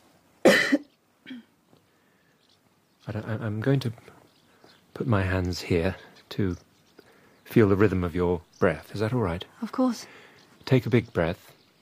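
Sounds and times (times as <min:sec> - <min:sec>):
single forceful cough on request: 0:00.4 - 0:01.5
speech: 0:03.1 - 0:04.2, 0:05.0 - 0:06.7, 0:07.5 - 0:11.6.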